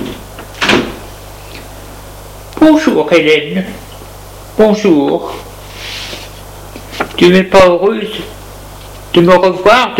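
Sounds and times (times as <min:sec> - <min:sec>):
door closing thud: 0:00.0 - 0:01.0
speech: 0:02.6 - 0:03.8, 0:04.6 - 0:05.5, 0:07.2 - 0:08.3, 0:09.1 - 0:09.9.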